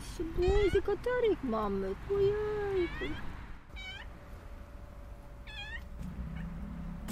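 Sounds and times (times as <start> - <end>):
speech: 0.2 - 3.3
cat fed by local residents meowing: 2.8 - 4.1, 5.4 - 6.6.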